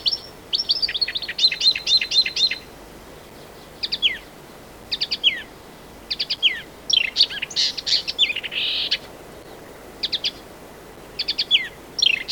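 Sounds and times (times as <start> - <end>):
Marsh warbler singing, Acrocephalus palustris: 0.0 - 2.7, 3.3 - 5.5, 6.1 - 12.3.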